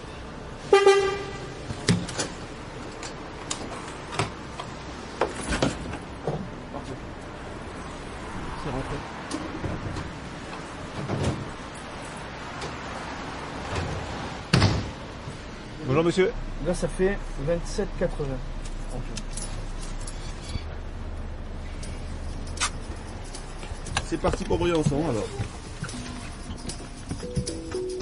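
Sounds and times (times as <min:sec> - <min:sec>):
bus engine low rumble: 0:00.0 - 0:28.0
bus horn honking: 0:00.6 - 0:01.7
speech: 0:16.0 - 0:19.3, 0:24.1 - 0:25.6.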